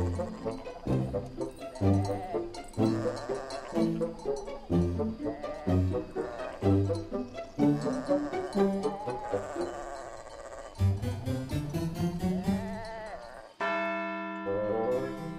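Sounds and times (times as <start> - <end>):
sheep bleating: 0.0 - 0.9, 1.7 - 4.0, 5.1 - 7.0, 7.7 - 11.0, 12.1 - 13.8
livestock bells of sheep, goats and cows clanking around a farm: 0.0 - 15.3
church bell ringing: 11.4 - 15.3.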